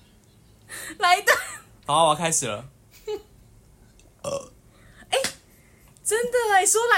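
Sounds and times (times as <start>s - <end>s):
speech: 0.9s - 3.2s, 6.2s - 6.9s
man burping deliberately on request: 4.2s - 4.6s.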